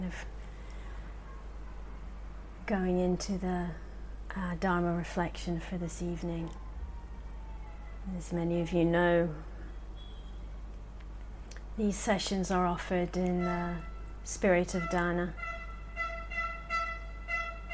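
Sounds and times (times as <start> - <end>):
speech: 0.1 - 0.4, 2.7 - 3.8, 4.4 - 6.6, 8.0 - 9.5, 11.8 - 15.5
horns honking outside in Israel during a lockdown: 9.7 - 10.6, 13.3 - 17.7.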